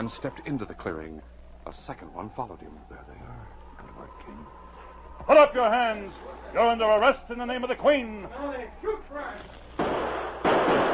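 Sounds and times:
speech: 0:00.0 - 0:04.6, 0:05.2 - 0:09.6
voices: 0:00.0 - 0:09.7
gunshots from outlaws opening fire: 0:09.6 - 0:10.9.

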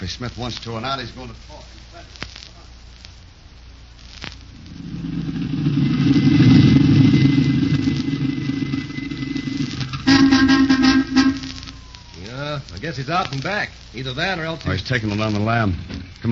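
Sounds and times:
speech: 0:00.0 - 0:02.3, 0:12.6 - 0:16.2
car engine running: 0:04.5 - 0:11.0.

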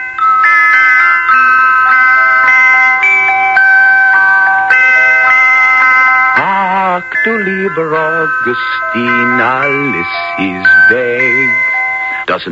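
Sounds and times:
small bells around a cooking pot chiming a melody: 0:00.0 - 0:12.3
speech: 0:07.0 - 0:11.7, 0:12.3 - 0:12.5.

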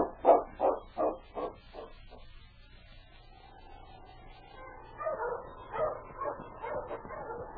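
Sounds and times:
sled dogs barking and yipping: 0:00.0 - 0:02.3, 0:04.4 - 0:07.5.

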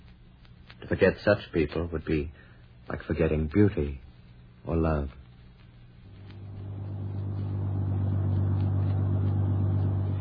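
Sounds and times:
speech: 0:00.9 - 0:04.0, 0:04.6 - 0:05.2
bus engine droning while driving: 0:06.5 - 0:10.1.

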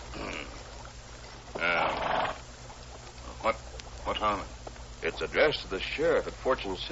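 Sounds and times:
soft animal snort: 0:01.5 - 0:02.4
horse wearing a side saddle whinnying: 0:01.6 - 0:02.4
speech: 0:04.2 - 0:06.9.

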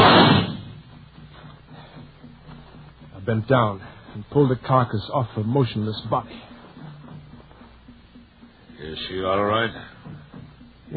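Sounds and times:
gunshot fired at an attacking leopard: 0:00.0 - 0:00.9
speech: 0:03.3 - 0:06.5, 0:08.9 - 0:10.2.

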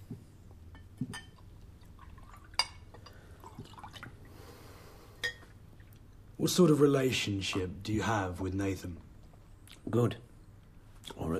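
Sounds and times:
low hum: 0:00.0 - 0:11.3
water pouring into a glass: 0:01.3 - 0:04.5
small clinks of a glass: 0:05.2 - 0:05.5
speech: 0:06.4 - 0:09.1, 0:09.9 - 0:10.3.

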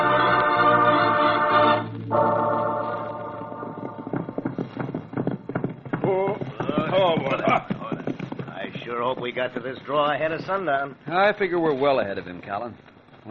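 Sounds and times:
sustained music-like tones: 0:00.0 - 0:05.0
horse hooves of riders approaching: 0:02.2 - 0:13.2
speech: 0:09.1 - 0:13.2.

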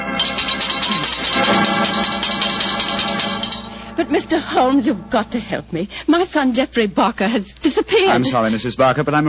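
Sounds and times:
doorbell ringing with metallic jangling: 0:00.1 - 0:04.0
speech: 0:04.0 - 0:09.2.

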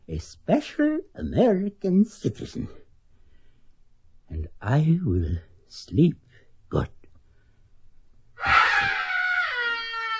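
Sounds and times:
speech: 0:00.1 - 0:02.8, 0:04.3 - 0:07.0
person screaming in anguish: 0:08.4 - 0:10.1.

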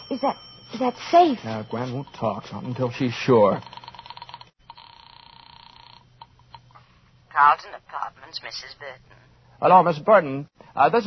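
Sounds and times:
telephone ringing with thin trilling tone through a handset: 0:00.0 - 0:06.6
speech: 0:00.1 - 0:03.8, 0:07.4 - 0:11.0.

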